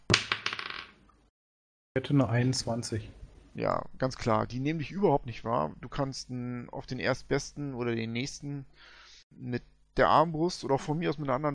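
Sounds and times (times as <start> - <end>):
dice clattering across a hard tabletop: 0.1 - 1.0
speech: 2.0 - 11.5.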